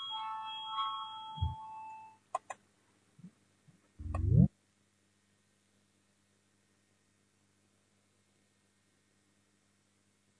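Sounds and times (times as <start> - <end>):
parliamentary electronic voting chime tone: 0.0 - 2.2
sharp clicks: 2.4 - 2.6
brief low rising hum: 4.0 - 4.5.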